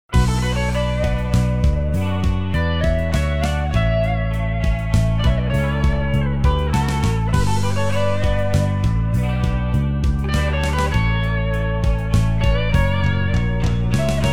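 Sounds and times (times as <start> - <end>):
hard rock background music phone audio theme: 0.1 - 14.3.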